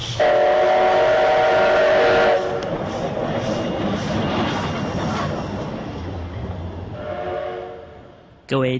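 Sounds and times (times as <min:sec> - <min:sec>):
loud sustained steam locomotive whistle: 0:00.0 - 0:02.7, 0:07.0 - 0:08.0
rumbling clatter of train wheels rolling along the track: 0:00.0 - 0:06.8
speech: 0:08.5 - 0:08.7.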